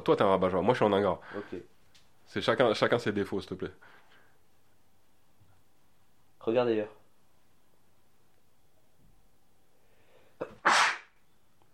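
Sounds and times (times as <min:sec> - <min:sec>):
speech: 0:00.0 - 0:04.0, 0:06.4 - 0:07.0
sneeze: 0:10.4 - 0:11.2.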